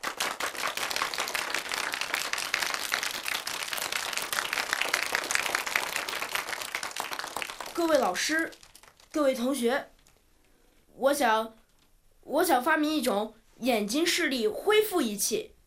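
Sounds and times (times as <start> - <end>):
room full of people clapping in a classroom: 0.0 - 9.4
speech: 7.8 - 8.6, 9.2 - 9.9, 11.0 - 11.6, 12.2 - 15.5.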